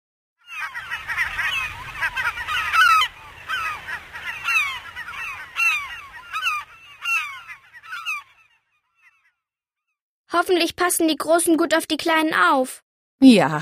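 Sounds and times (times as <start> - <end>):
penguin parents calling for their chicks in a busy colony: 0.5 - 9.2
speech: 10.4 - 13.6.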